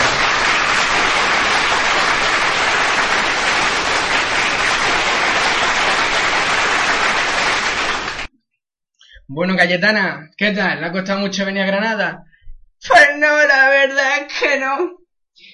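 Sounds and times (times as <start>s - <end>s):
audience applause: 0.0s - 8.3s
speech: 9.4s - 15.5s.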